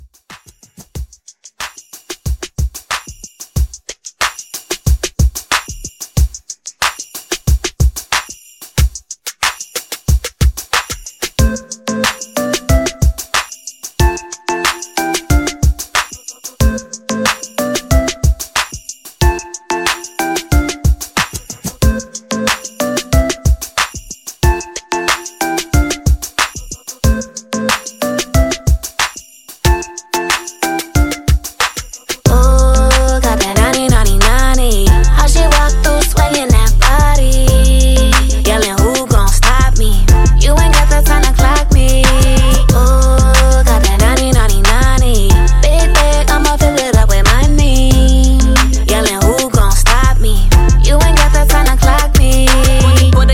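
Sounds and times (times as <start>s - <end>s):
drum beat: 0.0s - 53.2s.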